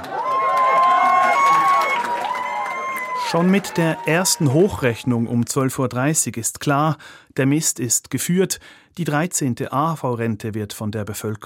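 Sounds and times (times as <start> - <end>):
dense crowd cheering with whoops and shouts: 0.0 - 5.9
speech: 3.3 - 11.4.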